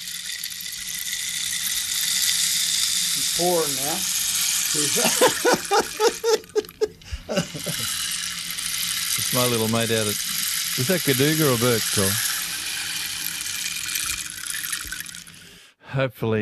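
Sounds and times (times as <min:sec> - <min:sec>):
rain stick being shaken: 0:00.0 - 0:15.5
speech: 0:03.4 - 0:08.0, 0:09.3 - 0:12.3, 0:16.0 - 0:16.3
person laughing: 0:04.8 - 0:08.0.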